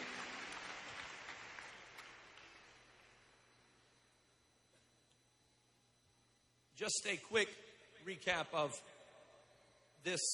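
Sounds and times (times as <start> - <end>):
audience at a worship gathering clapping: 0.0 - 3.4
speech: 6.8 - 8.9, 10.0 - 10.3.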